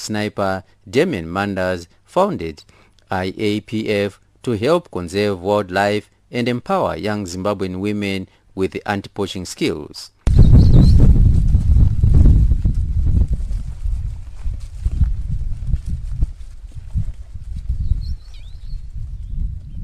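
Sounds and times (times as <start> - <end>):
speech: 0.0 - 11.0
footsteps on a morning anti-poaching patrol in a wildlife sanctuary near Kariba, Zimbabwe: 11.4 - 17.8
faint bird chirp in a wildlife sanctuary near Kariba, Zimbabwe: 17.8 - 19.8.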